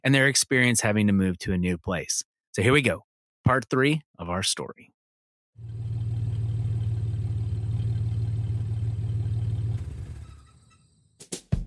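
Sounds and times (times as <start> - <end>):
speech: 0.0 - 4.9
truck engine rumbling as it drives into a driveway: 5.6 - 11.0.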